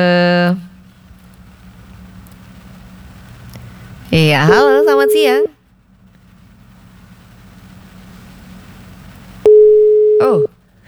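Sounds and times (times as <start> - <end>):
speech: 0.0 - 0.6, 4.1 - 5.6
quiet telephone line noise: 2.2 - 10.5
single-pitch telephone busy tone: 9.5 - 10.5.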